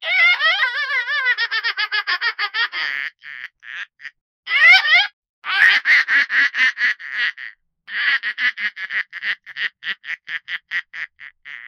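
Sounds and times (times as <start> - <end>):
laughing duck sounds: 0.2 - 11.6.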